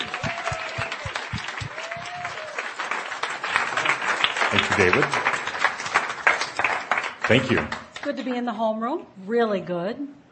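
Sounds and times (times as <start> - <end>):
scattered cheers: 0.0 - 3.0
audience clapping: 0.0 - 8.3
speech: 4.5 - 5.3, 7.3 - 10.2.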